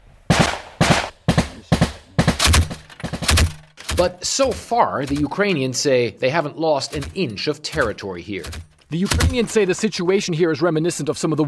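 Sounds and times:
gunfire from small arms and heavy machine guns on a front line: 0.3s - 5.4s, 7.0s - 9.6s
speech: 4.0s - 11.4s.

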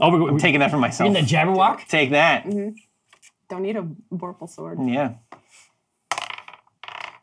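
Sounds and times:
speech: 0.0s - 2.9s, 3.5s - 5.3s
dice rolling on a hard tabletop: 6.1s - 7.2s.

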